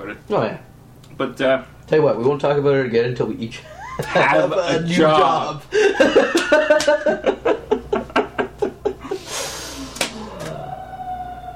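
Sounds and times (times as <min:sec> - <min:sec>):
speech: 0:00.1 - 0:07.5
laughter: 0:03.6 - 0:11.5
emergency vehicle siren passing by: 0:10.2 - 0:11.5.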